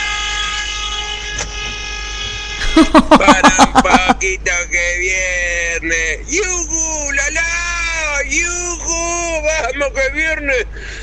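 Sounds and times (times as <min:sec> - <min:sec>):
long steady loud car horn blast: 0:00.0 - 0:03.0
laughter: 0:02.6 - 0:04.4
speech: 0:02.8 - 0:03.2, 0:03.8 - 0:07.6, 0:08.2 - 0:11.0.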